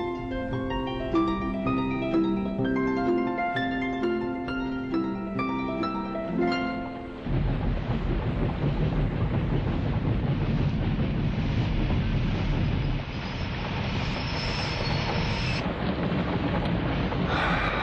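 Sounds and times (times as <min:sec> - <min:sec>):
music: 0:00.0 - 0:11.4
heavy rain and wind on a dark night: 0:00.0 - 0:17.8.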